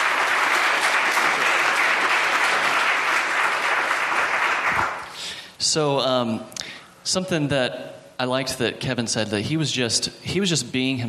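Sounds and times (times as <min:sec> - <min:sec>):
audience applause: 0:00.0 - 0:05.1
speech: 0:05.7 - 0:11.0.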